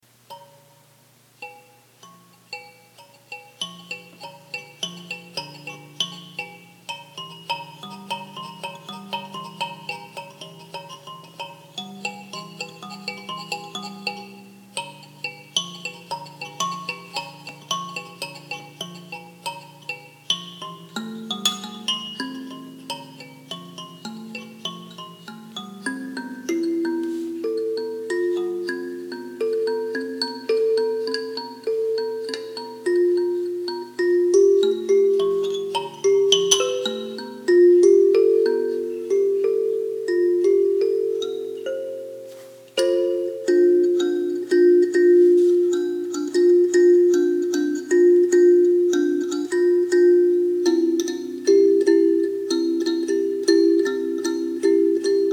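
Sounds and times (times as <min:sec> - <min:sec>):
kalimba rambling: 0:00.3 - 0:55.3.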